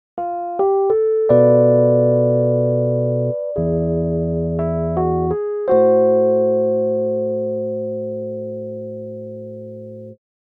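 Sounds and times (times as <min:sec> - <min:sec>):
jazz chord progression with melody: 0:00.2 - 0:10.2.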